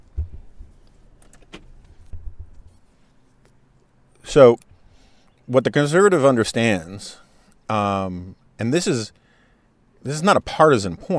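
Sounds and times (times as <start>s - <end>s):
low thumps from car being switched off: 0.0s - 0.8s, 1.5s - 2.7s
speech: 4.4s - 4.6s, 5.5s - 9.2s, 10.0s - 11.1s.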